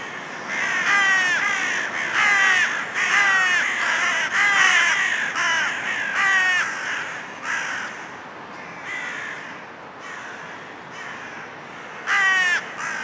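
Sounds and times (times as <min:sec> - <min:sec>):
Carrion crow Corvus corone giving harsh grating caws: 0:00.0 - 0:13.0.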